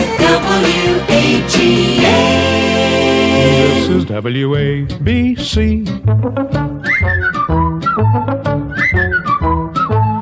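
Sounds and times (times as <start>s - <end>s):
loud bouncy instrumental jingle backing: 0.0s - 10.2s
speech: 4.0s - 6.8s
bright whistled melody in a radio jingle: 6.2s - 10.2s.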